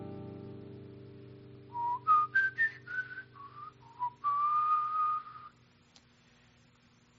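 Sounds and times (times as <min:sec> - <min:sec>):
solo whistled jazz melody line based on a G major 7 arpeggio: 0:01.7 - 0:05.6.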